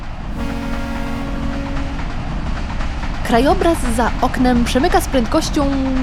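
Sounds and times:
train horn: 0.0 - 3.4
PKP train in Poland rolling along the tracks heard from inside: 0.0 - 6.0
speech: 3.3 - 6.0.

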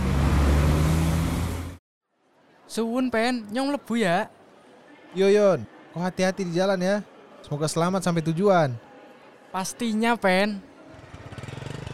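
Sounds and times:
vehicle speeding off with loud steady engine roar: 0.0 - 1.8
speech: 2.7 - 4.4, 5.1 - 8.9, 9.5 - 10.7.

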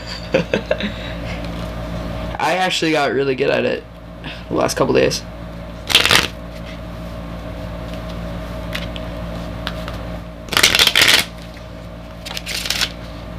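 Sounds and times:
steady low hum: 0.0 - 13.3
speech: 0.3 - 1.2, 2.4 - 5.3
playing cards riffle-shuffled and bridged in midair: 5.9 - 6.4, 8.7 - 13.2.

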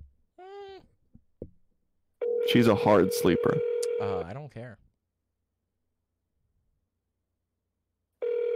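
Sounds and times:
steady electronic phone ring tone: 2.2 - 4.3, 8.2 - 8.5
speech: 2.5 - 4.9.

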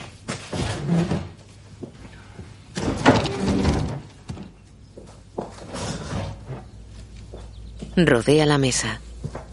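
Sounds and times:
chairs pushed in against a table, scraping and knocking: 0.3 - 1.4, 2.8 - 4.1, 5.4 - 6.8
speech: 0.8 - 1.3, 8.0 - 9.1.

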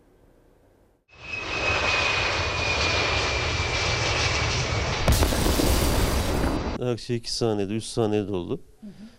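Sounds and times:
loud roar of an airplane engine with a steady high whine: 1.1 - 6.8
speech: 6.9 - 9.1.

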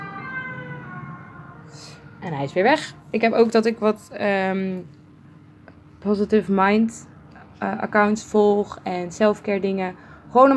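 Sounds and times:
ambulance siren wailing while passing by: 0.0 - 2.8
low traffic rumble: 0.0 - 10.5
speech: 1.7 - 5.0, 6.0 - 10.5.

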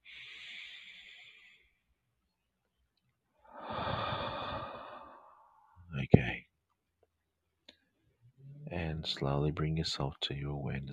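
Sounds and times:
slow deep breathing during a guided meditation: 0.0 - 2.0, 3.4 - 5.8
speech: 9.0 - 10.9.

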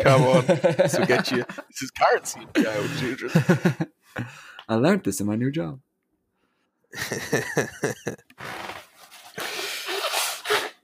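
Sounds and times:
laughter: 0.0 - 4.3, 7.0 - 8.2
speech: 0.0 - 5.8, 6.9 - 8.8
nose blowing into a tissue: 8.4 - 10.8
sniffly snorting bursts: 8.4 - 10.8.

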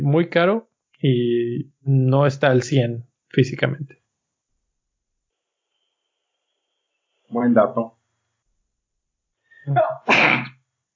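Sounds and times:
speech: 0.0 - 4.0, 7.3 - 8.0, 9.6 - 10.6
sneeze: 9.7 - 10.6.

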